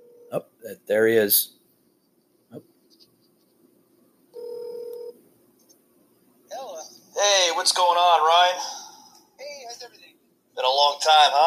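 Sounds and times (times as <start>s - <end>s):
sustained electronic telephone tone: 0.0s - 0.3s, 4.3s - 5.2s
faint hiss: 0.0s - 11.4s
speech: 0.3s - 1.6s, 7.6s - 8.8s, 10.6s - 11.4s.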